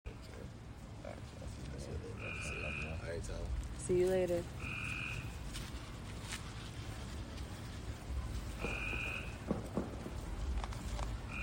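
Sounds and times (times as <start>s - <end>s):
steady low background noise: 0.1s - 11.4s
Cope's gray treefrog Hyla chrysoscelis giving harsh buzzing trills in Maryland: 2.2s - 3.0s, 4.6s - 5.3s, 8.6s - 9.4s.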